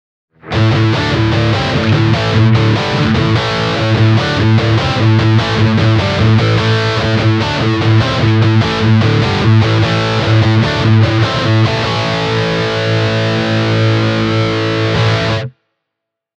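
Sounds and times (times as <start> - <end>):
overdriven guitar amplifier: 0.4 - 15.6.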